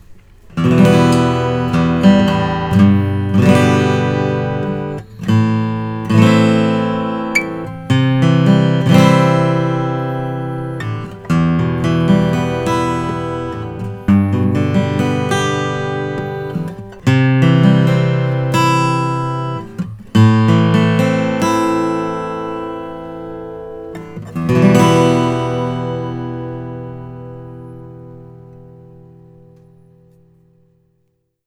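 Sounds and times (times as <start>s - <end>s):
Martin guitar with alpine spruce and cocobolo: 0.0s - 31.4s.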